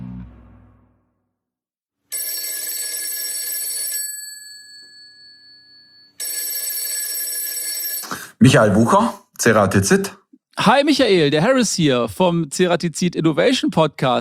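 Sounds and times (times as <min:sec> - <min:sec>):
telephone ringing on an outgoing call: 0:02.1 - 0:08.1
speech: 0:08.4 - 0:14.1.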